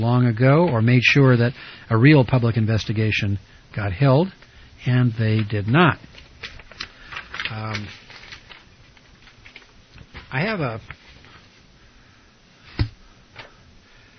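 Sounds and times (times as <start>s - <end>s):
speech: 0.0s - 6.6s, 7.5s - 8.0s, 10.3s - 11.0s
papers rustling and shuffling: 4.4s - 11.7s
sharp handling thump of papers: 12.7s - 13.0s.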